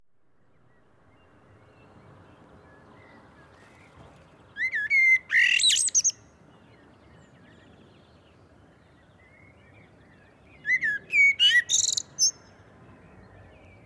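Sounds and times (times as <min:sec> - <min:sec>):
common blackbird Turdus merula singing: 0:00.7 - 0:13.8.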